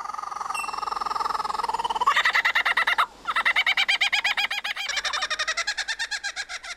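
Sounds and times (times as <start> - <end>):
lyrebird imitating the laughing call of a kookaburra: 0.5 - 5.7.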